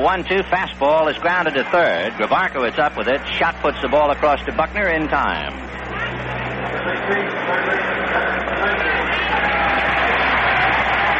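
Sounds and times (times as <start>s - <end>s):
speech: 0.0s - 6.4s, 7.1s - 8.8s
large stadium crowd applauding and cheering: 5.8s - 11.1s.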